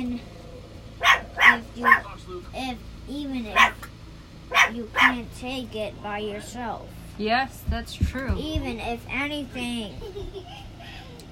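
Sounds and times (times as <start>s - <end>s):
dog barking: 1.0s - 2.1s, 3.5s - 3.9s, 4.5s - 5.2s
speech: 1.8s - 3.9s, 4.6s - 11.3s.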